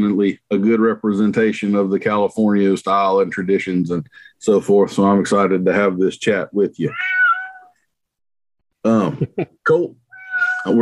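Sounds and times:
speech: 0.0 - 7.2, 8.8 - 10.0
cat meowing: 6.9 - 7.8, 10.1 - 10.7.

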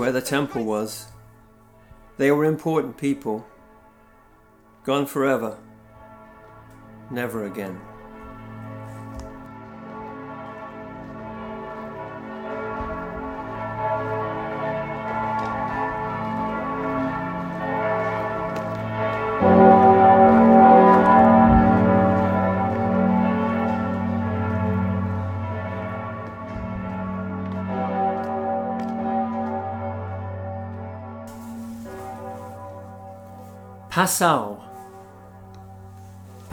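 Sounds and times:
speech: 0.0 - 1.1, 2.2 - 3.5, 4.8 - 5.7, 7.1 - 7.9, 34.0 - 34.6
church bells ringing in Passau: 0.0 - 36.5.

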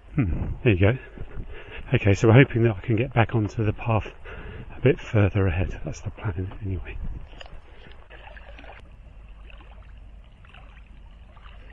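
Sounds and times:
speech: 0.2 - 7.2
small waves lapping on a reservoir shore: 7.2 - 11.7.

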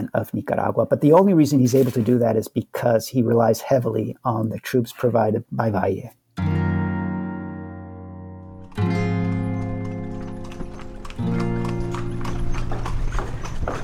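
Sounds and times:
speech: 0.1 - 6.5
horses' hooves clip-clopping on pavement pulling a carriage: 8.7 - 13.8.

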